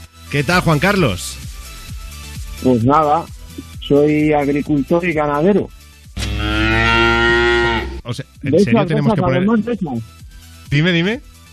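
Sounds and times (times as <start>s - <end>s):
speech: 0.3s - 1.5s, 2.6s - 5.8s, 8.1s - 11.3s
cow mooing: 6.2s - 8.0s.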